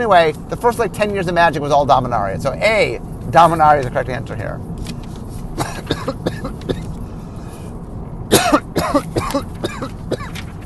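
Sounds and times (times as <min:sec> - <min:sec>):
speech: 0:00.0 - 0:04.7, 0:05.6 - 0:06.3
harsh coughs: 0:05.6 - 0:07.0, 0:08.3 - 0:10.4.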